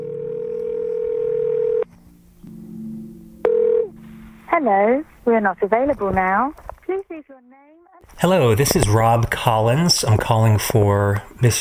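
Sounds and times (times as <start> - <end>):
telephone tone humming: 0.0 - 1.9, 3.4 - 4.3
speech: 4.6 - 11.5.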